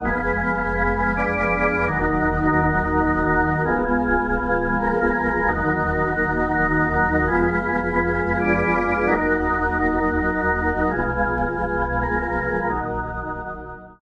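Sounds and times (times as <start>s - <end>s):
dry organ through rotary speaker with watery flow: 0.0s - 14.0s.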